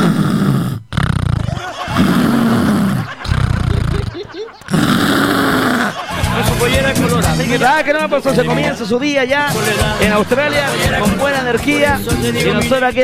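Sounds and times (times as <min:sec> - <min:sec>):
voice imitating snoring: 0:00.0 - 0:06.0
laughter: 0:01.4 - 0:08.8, 0:09.5 - 0:12.6
speech: 0:07.8 - 0:13.0.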